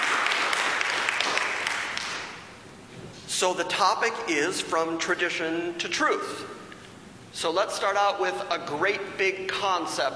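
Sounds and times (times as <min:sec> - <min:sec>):
church audience applause: 0:00.0 - 0:02.3
speech: 0:03.4 - 0:06.6, 0:07.4 - 0:10.1.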